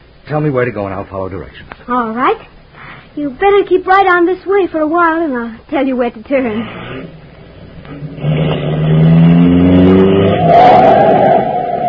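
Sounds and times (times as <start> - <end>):
speech: 0.3 - 2.6, 3.2 - 7.1, 10.5 - 11.0
car driving past dangerously close: 6.8 - 11.8.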